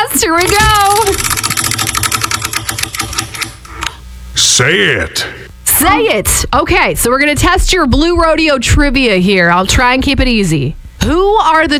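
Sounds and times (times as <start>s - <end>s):
speech: 0.1s - 1.9s, 4.6s - 11.7s
prize wheel spun in a game for concert tickets ratcheting: 0.4s - 3.6s.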